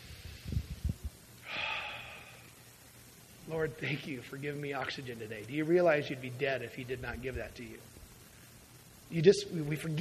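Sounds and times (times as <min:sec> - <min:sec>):
deep breath: 0:01.4 - 0:02.6
speech: 0:03.5 - 0:08.0, 0:09.1 - 0:09.9.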